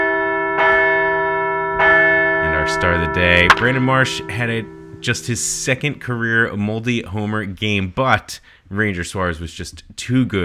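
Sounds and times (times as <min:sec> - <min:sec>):
large bell ringing to celebrate a baseball team's win: 0:00.0 - 0:07.4
speech: 0:02.8 - 0:10.4.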